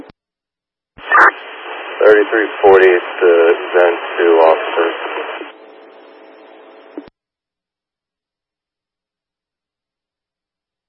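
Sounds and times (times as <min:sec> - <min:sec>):
crackly radio static: 0:01.0 - 0:07.1
steady hiss of radio transmission noise: 0:01.0 - 0:07.1
speech: 0:02.0 - 0:05.4.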